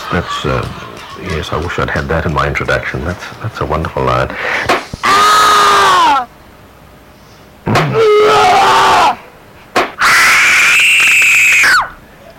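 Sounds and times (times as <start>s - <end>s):
laughter: 0.0s - 5.0s
speech: 0.1s - 4.8s
people screaming: 5.0s - 6.3s, 7.7s - 9.2s, 10.0s - 12.0s.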